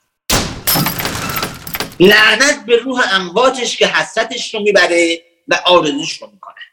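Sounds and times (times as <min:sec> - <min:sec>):
door slamming shut: 0:00.3 - 0:02.3
window glass rattling and shaking: 0:00.6 - 0:02.3
speech: 0:02.0 - 0:06.7.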